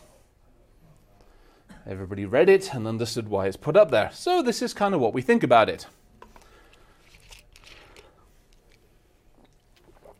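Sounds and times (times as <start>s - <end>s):
quiet room noise: 0.0s - 10.1s
speech: 1.8s - 6.0s
brief wet slurp of a drink: 9.3s - 10.1s.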